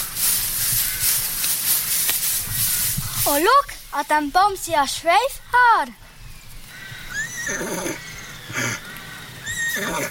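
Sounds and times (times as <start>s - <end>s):
speech: 3.3s - 6.0s, 7.5s - 7.8s
horse neighing: 6.9s - 10.0s
horse snorting: 7.4s - 8.9s, 9.7s - 10.0s.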